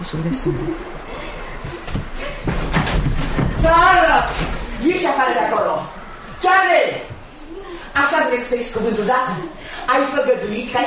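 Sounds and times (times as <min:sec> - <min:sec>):
speech: 0:00.0 - 0:01.0, 0:03.6 - 0:07.1, 0:08.0 - 0:10.8
rumbling noisy room tone: 0:00.0 - 0:10.8
door slamming shut: 0:02.5 - 0:04.8.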